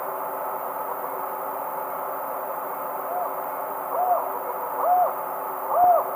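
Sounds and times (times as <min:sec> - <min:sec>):
steady low background hum: 0:00.0 - 0:06.1
Tropical screech owl Megascops choliba hooting in duet in South America eastern lowlands: 0:03.0 - 0:06.1.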